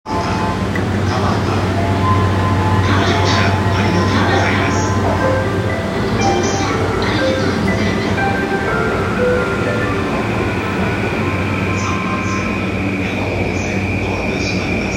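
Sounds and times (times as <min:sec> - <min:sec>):
JR train sounds at Tabata: 0:00.0 - 0:14.9.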